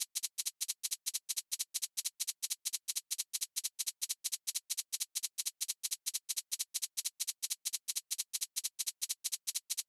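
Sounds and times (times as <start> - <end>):
shaker rattling: 0.0 - 9.8.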